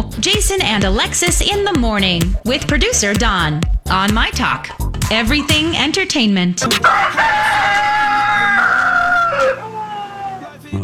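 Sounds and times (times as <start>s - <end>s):
speech: 0.2s - 7.7s
rooster crowing hoarsely: 6.7s - 10.6s.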